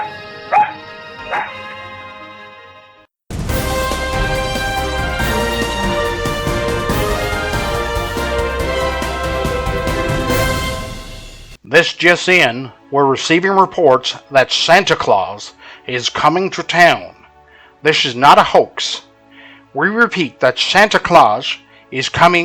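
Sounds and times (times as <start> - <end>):
female dog barking: 0.0 - 1.8
loud music: 3.3 - 11.6
speech: 11.8 - 17.2, 17.8 - 19.1, 19.7 - 22.4.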